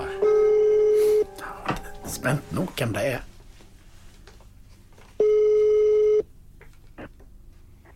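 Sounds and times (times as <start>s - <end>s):
phone call ringing tone: 0.2s - 1.3s, 5.2s - 6.2s
speech: 2.2s - 3.3s.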